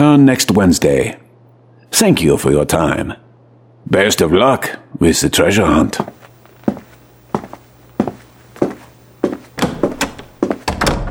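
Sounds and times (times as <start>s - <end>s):
speech: 0.0s - 1.2s, 1.9s - 3.2s, 3.8s - 6.8s
footsteps on a hard floor: 6.0s - 10.8s.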